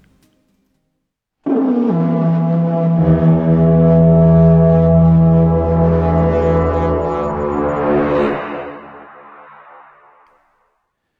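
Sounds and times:
loud deep brassy horn blaring: 1.4 - 10.3.

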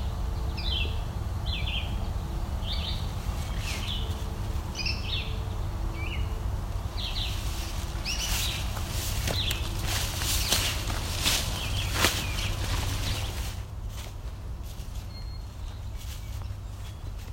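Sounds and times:
American goldfinch singing: 0.0 - 13.4
yellow warbler singing: 0.0 - 13.7, 14.6 - 17.3
steady low outdoor rumble: 0.0 - 17.3.

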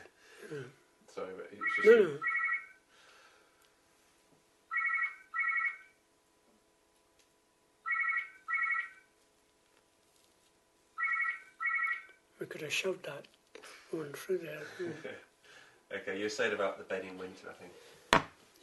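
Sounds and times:
quiet hum: 0.0 - 18.6
speech: 0.5 - 2.3, 12.6 - 15.3, 15.9 - 18.0
telephone ringing with bright electronic trills: 1.6 - 2.8, 4.7 - 6.0, 7.8 - 9.1, 11.0 - 12.1.

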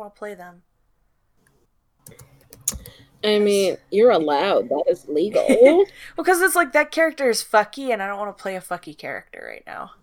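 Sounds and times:
speech: 0.0 - 0.7, 2.1 - 2.3, 3.2 - 10.0
typing on a computer keyboard: 2.0 - 3.1.

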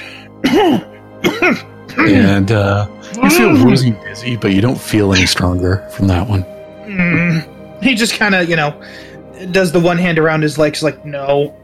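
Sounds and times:
person imitating rough throaty choking coughs: 0.4 - 2.4
speech: 0.6 - 0.9, 1.5 - 11.6.

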